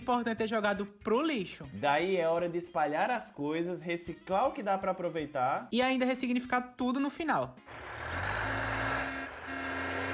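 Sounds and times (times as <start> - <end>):
speech: 0.0 - 8.4
garbage truck engine rumbling while passing: 7.7 - 10.1.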